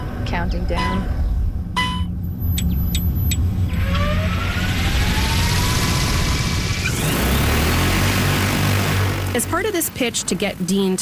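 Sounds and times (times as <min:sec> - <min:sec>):
speech: 0:00.3 - 0:01.2, 0:09.4 - 0:10.9
quick electronic beeps: 0:00.8 - 0:01.1, 0:01.8 - 0:03.5
large agricultural spray drone motor whine: 0:03.6 - 0:09.8
loud steady roar of spray drone rotor wash over a field: 0:03.7 - 0:09.6.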